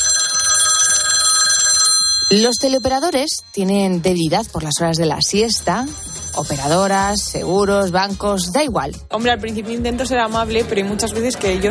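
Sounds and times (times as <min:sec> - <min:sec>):
telephone bell ringing with a bright metallic trill: 0:00.0 - 0:04.4, 0:05.5 - 0:07.3
speech: 0:02.3 - 0:11.6.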